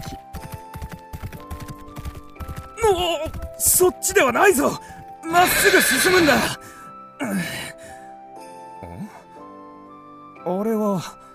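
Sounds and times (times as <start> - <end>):
horse hooves galloping: 0.0 - 4.6, 5.3 - 6.6
speech: 2.8 - 6.6
horse whinnying: 5.3 - 6.6.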